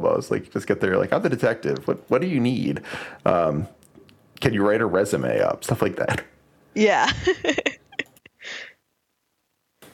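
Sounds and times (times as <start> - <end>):
speech: 0.2 - 3.8, 4.4 - 7.7
sharp breathy inhale of an aborted sneeze: 2.8 - 3.2
quick catching breaths: 2.8 - 3.3.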